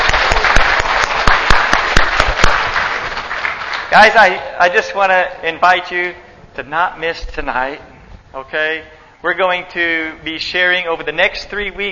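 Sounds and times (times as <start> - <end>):
audience applauding: 0.0 - 4.1
speech: 3.9 - 11.9.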